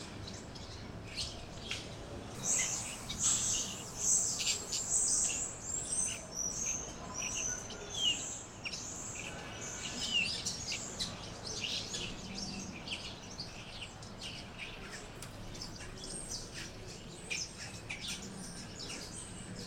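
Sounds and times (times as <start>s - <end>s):
birds chirping on a tree: 0.0s - 19.6s.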